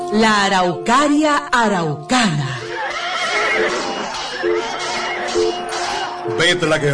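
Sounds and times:
speech: 0:00.1 - 0:02.5, 0:06.4 - 0:06.9
horse neighing as a radio drama sound effect: 0:02.5 - 0:05.3
laughter: 0:02.6 - 0:06.7.

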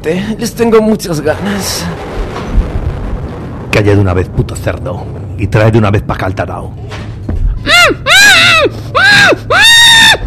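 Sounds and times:
speech: 0:00.0 - 0:02.2, 0:03.7 - 0:07.1, 0:07.8 - 0:09.5
person screaming: 0:07.7 - 0:10.2.

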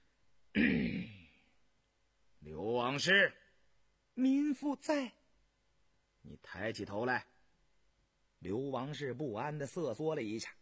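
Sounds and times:
light cough by an official: 0:00.6 - 0:01.2
speech: 0:02.9 - 0:03.4, 0:04.2 - 0:05.2, 0:06.2 - 0:07.3, 0:08.4 - 0:10.6.

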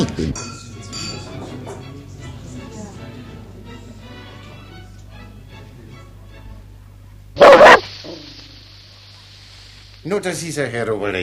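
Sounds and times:
speech: 0:00.2 - 0:00.6, 0:10.1 - 0:11.2
dog barking in a radio drama: 0:07.4 - 0:08.3.

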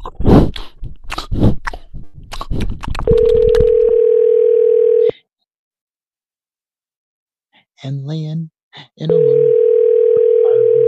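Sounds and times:
smacking chewing-like mouth noises: 0:00.0 - 0:03.9
telephone dial tone after a disconnected call: 0:03.1 - 0:05.1, 0:09.2 - 0:10.8
speech: 0:07.9 - 0:09.6.

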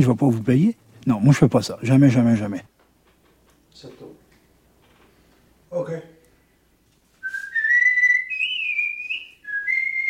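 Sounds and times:
speech: 0:00.0 - 0:02.7, 0:05.7 - 0:06.1
man whistling an old song: 0:07.2 - 0:10.0.

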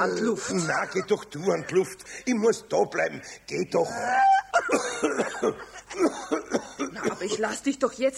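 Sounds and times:
speech: 0:00.0 - 0:08.1
person coughing fit after choking: 0:04.7 - 0:07.5.

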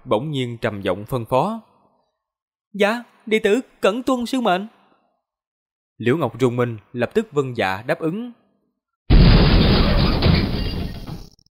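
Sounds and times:
speech: 0:00.0 - 0:01.7, 0:02.7 - 0:04.8, 0:06.0 - 0:08.4
heavy stone door slowly rising with loud deep rumbling: 0:09.1 - 0:11.4.

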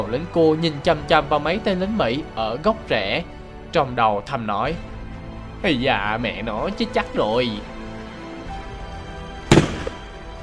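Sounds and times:
speech: 0:00.0 - 0:04.9, 0:05.6 - 0:07.8
gunshot sound effect in a wartime scene at a forest edge: 0:09.5 - 0:10.2.

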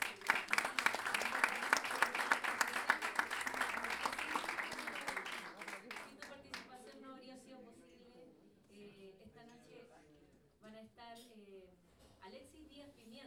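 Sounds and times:
audience clapping for a performer at an evening show in a small packed venue: 0:00.0 - 0:06.6.

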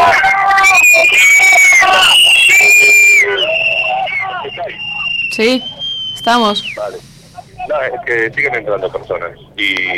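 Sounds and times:
crowd of people shouting: 0:00.0 - 0:06.9
shrill whistle-like tones: 0:00.0 - 0:07.8
speech: 0:05.4 - 0:07.1, 0:07.7 - 0:09.9.

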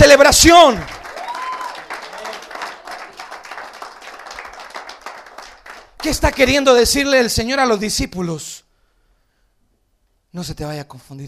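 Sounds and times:
speech: 0:00.2 - 0:00.9, 0:06.0 - 0:08.6, 0:10.3 - 0:11.2
congregation applause in church during a sermon: 0:00.2 - 0:06.6.

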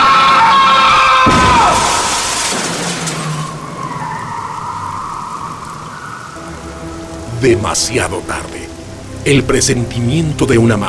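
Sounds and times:
speeding car tire screech while skidding: 0:00.0 - 0:06.4
speech: 0:07.4 - 0:08.6, 0:09.2 - 0:10.8.

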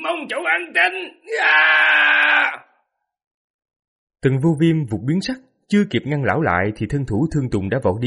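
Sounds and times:
speech: 0:00.5 - 0:01.8, 0:04.2 - 0:08.0
old Taoist priest screaming: 0:01.3 - 0:02.8.

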